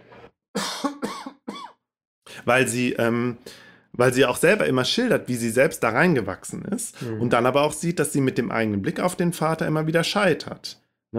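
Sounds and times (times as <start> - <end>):
person coughing: 0.6 - 1.8
speech: 2.4 - 11.1.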